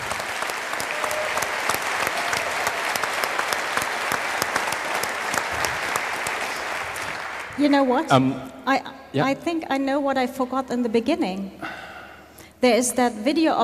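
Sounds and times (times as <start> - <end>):
audience applause: 0.0 - 8.2
speech: 7.6 - 11.7, 12.6 - 13.6.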